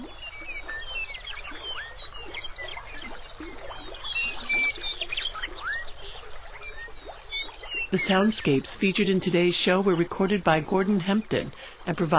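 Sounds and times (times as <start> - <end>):
birds chirping and whistling: 0.0 - 8.7
prairie river water flowing: 0.0 - 12.1
speech: 7.9 - 12.1.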